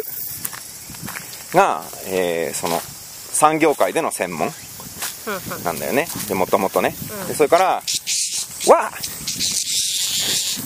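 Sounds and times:
cicada buzzing: 0.0 - 10.6
speech: 1.5 - 4.6, 5.2 - 8.0, 8.6 - 9.5.

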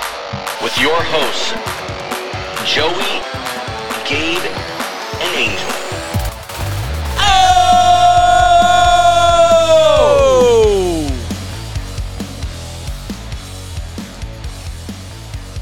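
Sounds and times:
speech: 0.7 - 1.8, 2.6 - 3.5, 4.1 - 5.9
podcast host yelling excitedly: 7.2 - 11.3.

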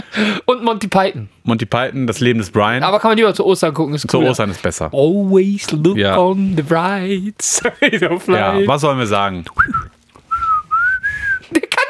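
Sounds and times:
speech: 0.0 - 9.8
laughter: 7.5 - 8.7, 11.4 - 11.8
person whistling a tune: 9.6 - 11.5.

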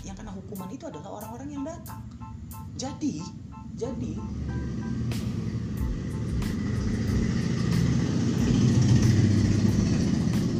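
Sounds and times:
speech: 0.1 - 5.4
very loud motorcycle engine rumbling as it passes: 4.4 - 10.5.

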